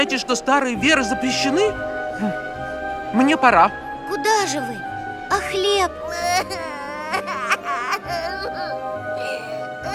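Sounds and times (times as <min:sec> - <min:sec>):
speech: 0:00.0 - 0:02.5, 0:03.1 - 0:06.8
child crying: 0:05.3 - 0:09.9.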